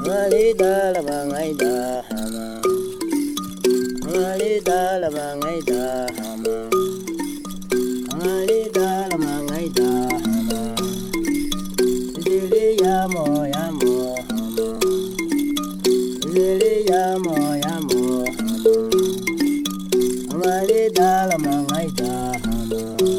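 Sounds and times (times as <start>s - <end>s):
Hadza man singing a wavering melody: 0.0s - 2.9s, 4.0s - 7.0s, 8.1s - 11.1s, 12.2s - 15.0s, 16.2s - 19.1s, 20.3s - 23.1s
thumb piano metal tongues plucked by fingertips: 0.0s - 23.1s
speech: 0.1s - 2.7s.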